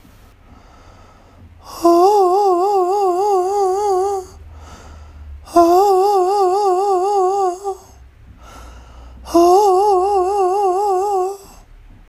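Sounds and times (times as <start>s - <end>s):
falsetto voice shifting pitch: 1.6s - 4.4s, 5.4s - 8.0s, 9.2s - 11.6s.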